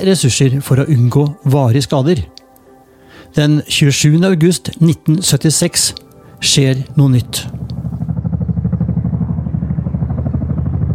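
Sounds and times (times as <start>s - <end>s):
speech: 0.0s - 2.4s, 3.3s - 7.8s
helicopter flying high over mountains: 5.5s - 10.9s.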